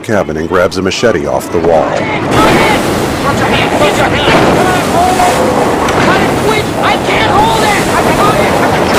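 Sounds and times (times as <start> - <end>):
speech: 0.0 - 6.0
indistinct voices: 0.0 - 8.9
wind: 0.0 - 8.9
violent waves crashing against a boat's stern: 1.8 - 8.9.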